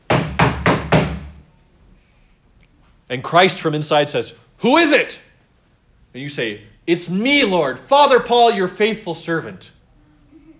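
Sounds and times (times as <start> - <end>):
firm knocks on a door: 0.1 - 1.4
speech: 3.1 - 5.2, 6.1 - 9.8.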